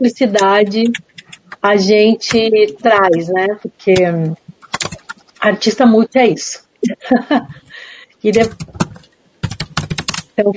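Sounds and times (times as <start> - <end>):
speech: 0.0 - 4.4, 5.4 - 7.6, 8.2 - 8.8, 10.4 - 10.5
typing on a keyboard: 0.3 - 1.6, 2.2 - 3.2, 3.9 - 5.5, 8.3 - 10.3.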